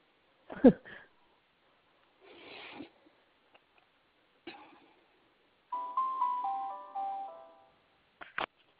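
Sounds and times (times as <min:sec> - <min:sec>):
small bell chime ringing bright stepping tones: 0:05.7 - 0:07.7.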